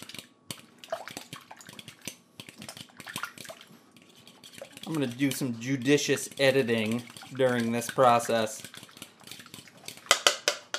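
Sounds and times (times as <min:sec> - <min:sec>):
wet sloppy stirring of thick watery goop in a bowl: 0:00.0 - 0:10.7
utensil clicking and tapping against the sides of a bowl: 0:04.6 - 0:09.0, 0:09.9 - 0:10.7
speech: 0:04.9 - 0:08.7.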